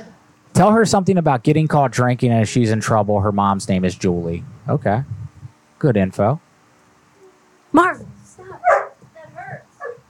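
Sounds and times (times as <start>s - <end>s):
speech: 0.6s - 5.2s, 5.8s - 6.4s, 7.7s - 8.1s
person murmuring: 4.2s - 5.5s
pet dog barking: 8.6s - 9.0s, 9.8s - 10.0s
pet dog yelping and whimpering: 9.8s - 10.0s.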